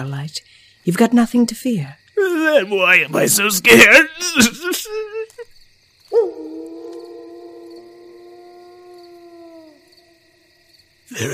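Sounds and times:
speech: 0.0 - 5.3, 11.2 - 11.3
loud howl: 6.1 - 10.3.

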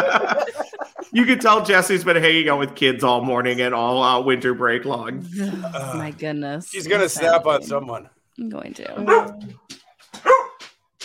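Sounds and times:
laughter: 0.0 - 2.0, 5.3 - 6.2
speech: 1.2 - 10.4
dog barking: 9.0 - 9.5, 10.2 - 10.6.

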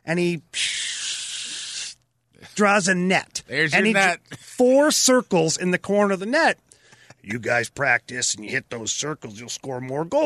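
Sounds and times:
speech: 0.0 - 0.7, 2.6 - 6.6, 7.2 - 10.2
voice imitating a spray paint can hiss: 0.6 - 2.0.

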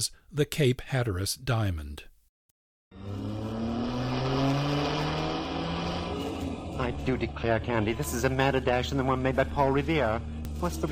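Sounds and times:
speech: 0.0 - 2.1, 6.8 - 10.8
car engine roaring at high speed in a chase: 2.9 - 10.8.

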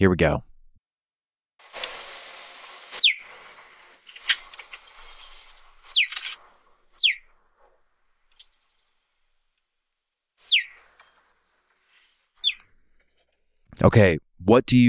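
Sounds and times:
speech: 0.0 - 0.5, 13.8 - 14.8
faint hiss: 1.6 - 12.4
cheetah giving sharp high bird-like chirps: 3.0 - 3.6, 5.0 - 7.4, 10.4 - 10.8, 12.4 - 12.7.

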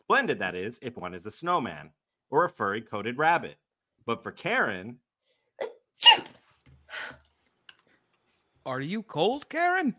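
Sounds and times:
speech: 0.1 - 5.0, 8.7 - 9.9
sneeze: 6.0 - 6.4.

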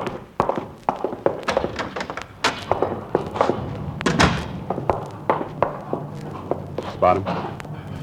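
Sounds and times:
knocks: 0.0 - 6.6
footsteps: 0.0 - 8.0
heavy thuds: 0.0 - 8.0
door opening and banging shut: 1.5 - 5.8
speech: 7.0 - 7.5.

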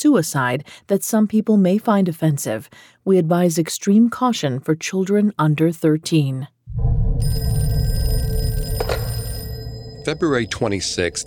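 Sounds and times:
speech: 0.0 - 7.6, 10.1 - 11.2
low rumbling background: 6.7 - 8.6
telephone ringing with a bright electronic tone: 7.2 - 11.2.

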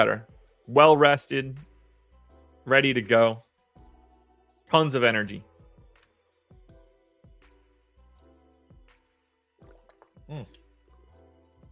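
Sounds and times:
speech: 0.0 - 1.7, 2.6 - 3.5, 4.7 - 5.5, 10.3 - 10.6
person gulping and swallowing water: 9.6 - 10.6.

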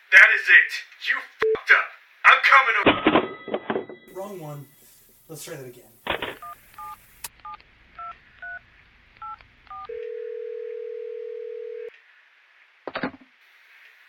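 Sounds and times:
speech: 0.1 - 3.6, 4.2 - 6.3
crackling burst: 4.1 - 9.7
telephone keypad dialing tones: 9.2 - 11.9.

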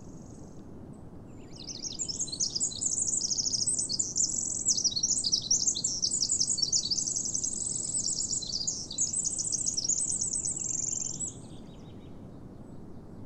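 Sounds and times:
soft steady background noise: 0.0 - 13.2
Pacific wren singing perched in the open in a national park: 1.4 - 11.9.

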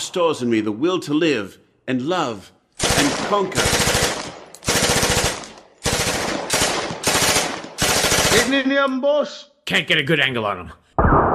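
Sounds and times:
speech: 0.1 - 3.9, 8.4 - 11.2
automatic gunfire from deputies shooting a neon sign: 2.8 - 8.7.

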